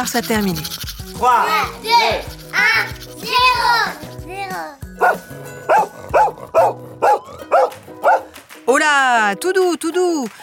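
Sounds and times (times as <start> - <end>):
speech: 0.0 - 7.5, 8.7 - 10.4
German shepherd dog barking: 5.0 - 8.3.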